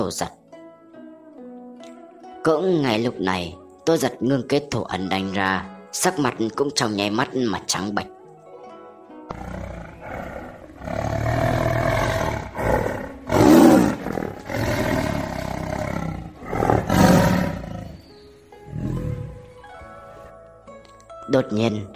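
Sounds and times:
speech: 0.0s - 0.4s, 2.4s - 8.2s, 21.3s - 21.9s
tiger roaring: 9.3s - 18.1s, 18.7s - 19.4s.

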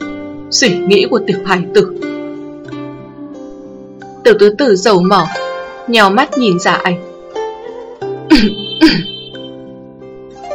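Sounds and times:
speech: 0.5s - 2.0s, 4.3s - 7.1s, 8.4s - 9.1s
dry cough: 8.3s - 9.3s.

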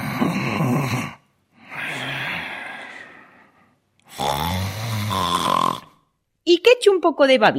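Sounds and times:
sleeping person snoring: 0.0s - 6.0s
speech: 0.6s - 1.2s, 6.5s - 7.5s.

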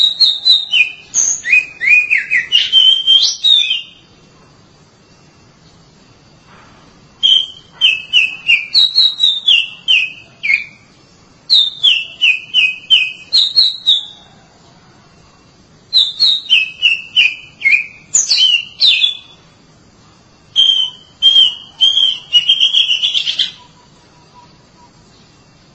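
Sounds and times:
Oriental magpie-robin whistled song: 0.0s - 4.1s, 7.2s - 10.9s, 11.5s - 14.3s, 15.9s - 19.5s, 20.5s - 25.6s.

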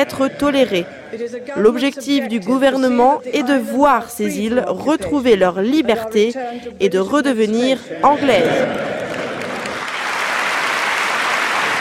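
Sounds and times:
laughter: 0.0s - 1.2s, 7.6s - 10.0s
speech: 0.0s - 8.9s
crowd of members of the British parliament applauding: 8.2s - 11.8s.

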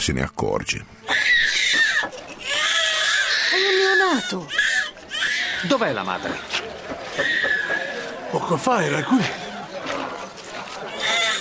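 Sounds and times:
speech: 0.0s - 1.1s, 3.6s - 4.6s, 5.6s - 7.3s, 8.5s - 9.4s
newborn baby crying: 1.0s - 6.5s, 10.9s - 11.3s
laughter: 6.2s - 11.3s.

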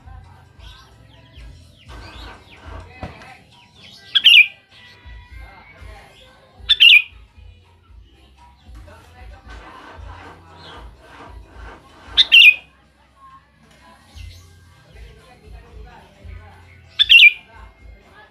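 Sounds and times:
Sooty-headed bulbul song: 0.0s - 8.8s, 12.1s - 12.7s, 14.0s - 18.3s.

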